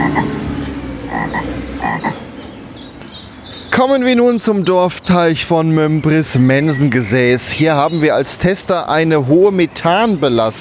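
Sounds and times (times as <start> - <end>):
frogs croaking at a village pond: 0.0 - 8.2
speech: 3.8 - 10.5.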